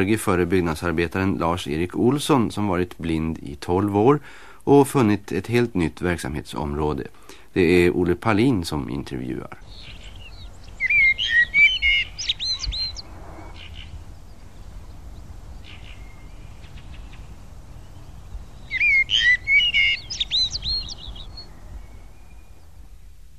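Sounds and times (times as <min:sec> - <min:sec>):
speech: 0:00.0 - 0:09.9
common blackbird singing at a croft in Värmland, Sweden: 0:09.2 - 0:23.2
faint chirps: 0:09.5 - 0:23.1.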